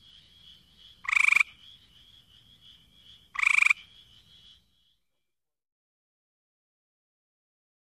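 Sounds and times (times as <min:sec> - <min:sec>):
Hyla versicolor gray treefrog calling with pulsed musical trills: 0:00.0 - 0:05.0.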